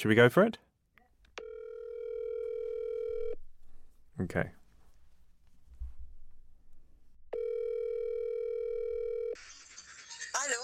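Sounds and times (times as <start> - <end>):
speech: 0.0 - 0.6, 4.2 - 4.6
telephone ringing tone: 1.4 - 3.4, 7.3 - 9.4.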